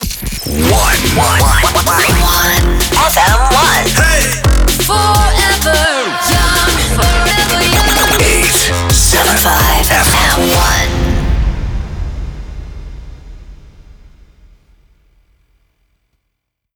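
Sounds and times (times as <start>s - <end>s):
128 bpm FM radio station ID jingle: 0.0s - 11.8s.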